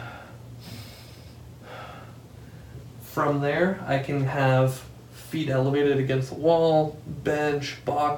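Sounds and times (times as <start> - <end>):
deep diaphragmatic breathing: 0.0 - 3.0
speech: 3.2 - 8.1.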